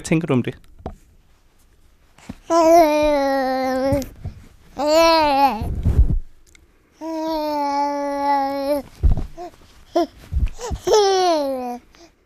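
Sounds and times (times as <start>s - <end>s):
baby handling the microphone's foam cover: 2.2s - 6.4s, 8.7s - 11.2s
5-month-old baby babbling into a microphone: 2.4s - 4.2s, 4.8s - 5.7s, 7.0s - 12.1s.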